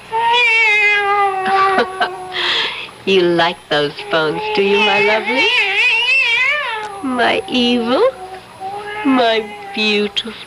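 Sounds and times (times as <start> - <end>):
cat meowing: 0.1 - 2.4, 4.1 - 10.2
speech: 3.1 - 5.7, 7.0 - 8.2, 9.0 - 10.4.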